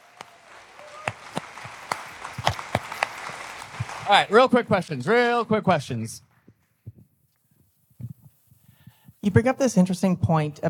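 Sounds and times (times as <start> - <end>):
sparse audience applause after a presentation: 0.0 - 5.4
speech: 4.1 - 6.3, 9.4 - 10.6.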